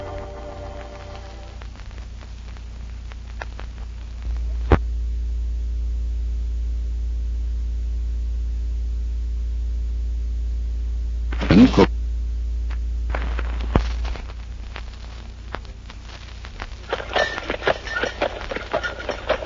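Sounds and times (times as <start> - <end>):
low hum: 0.0 - 19.4
horse hooves clip-clopping: 16.5 - 19.4
horse-drawn milk wagon rattling while delivering milk in 1896: 16.9 - 19.4.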